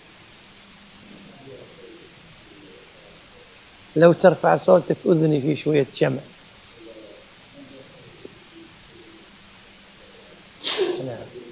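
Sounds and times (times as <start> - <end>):
speech: 4.0 - 6.4
sneeze: 10.6 - 11.2.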